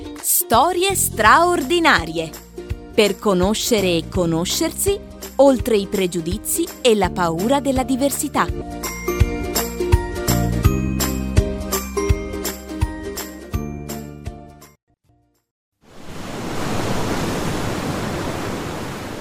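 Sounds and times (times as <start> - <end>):
speech: 0.5 - 2.4, 2.9 - 8.8
bright tinkling musical jingle: 8.8 - 14.2
sea waves rushing around a ship at sea: 15.9 - 19.1.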